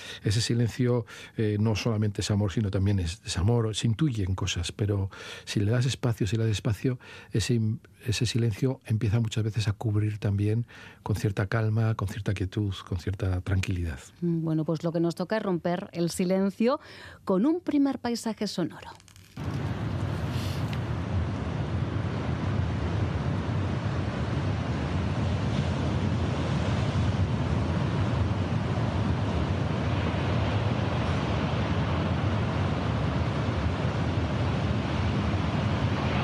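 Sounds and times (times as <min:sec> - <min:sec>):
speech: 0:00.2 - 0:19.9
sea waves washing onto the shore at dawn in Donostia: 0:19.4 - 0:36.2.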